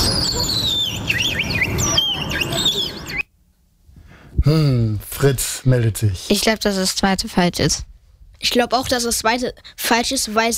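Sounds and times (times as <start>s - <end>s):
willow warbler singing: 0.0s - 3.2s
speech: 4.5s - 10.5s.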